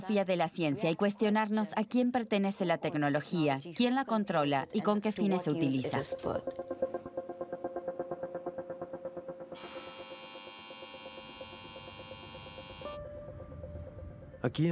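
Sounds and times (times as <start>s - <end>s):
speech: 0.0s - 7.1s, 14.4s - 14.6s
industrial turbines of a giant CO2 capture machine humming in Switzerland: 7.0s - 14.0s
bright high-pitched whine: 9.6s - 13.0s.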